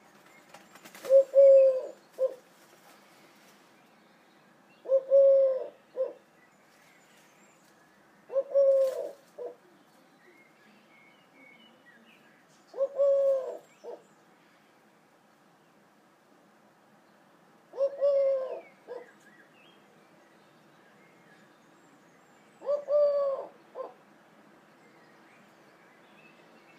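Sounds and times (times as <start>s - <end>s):
collared dove outside the bathroom window: 1.0s - 2.4s, 4.8s - 6.2s, 8.3s - 9.7s, 12.7s - 14.1s, 17.7s - 19.2s, 22.6s - 24.0s.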